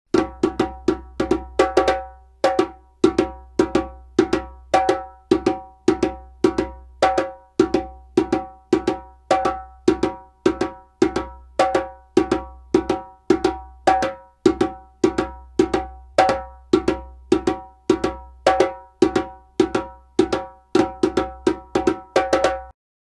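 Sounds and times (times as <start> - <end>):
djembe playing a traditional rhythm: 0.1 - 22.7.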